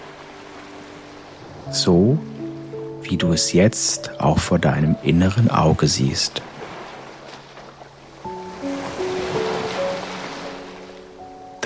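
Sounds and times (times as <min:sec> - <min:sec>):
calm sustained musical tones: 0:00.0 - 0:11.6
soft ocean surf washing ashore: 0:00.0 - 0:11.6
speech: 0:01.7 - 0:02.3, 0:03.0 - 0:06.5.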